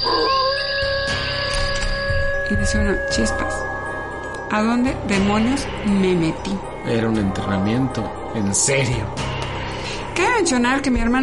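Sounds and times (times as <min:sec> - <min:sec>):
animal howling: 0:00.0 - 0:03.8
speech: 0:02.5 - 0:03.8, 0:04.5 - 0:09.3, 0:10.2 - 0:11.2.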